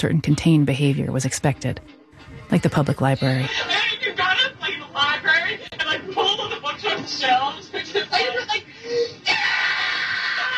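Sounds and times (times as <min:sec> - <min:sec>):
speech: 0:00.0 - 0:03.8
laughter: 0:02.5 - 0:10.5
girl screaming on old tape: 0:09.3 - 0:10.5.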